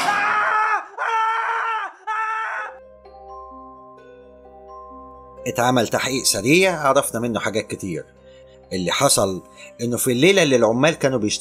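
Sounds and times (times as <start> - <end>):
man screaming long loud and strained: 0.0 - 2.8
speech: 5.5 - 11.3.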